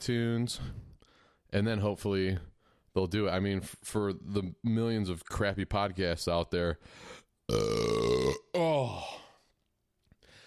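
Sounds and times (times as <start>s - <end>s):
speech: 0.0s - 0.9s, 1.5s - 9.2s
long loud deep belch after drinking grape soda: 7.5s - 8.7s.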